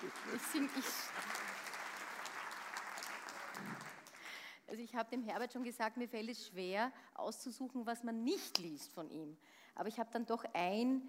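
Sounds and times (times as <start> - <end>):
speech: 0.0 - 1.4, 4.7 - 11.0
audience applauding: 0.0 - 4.3.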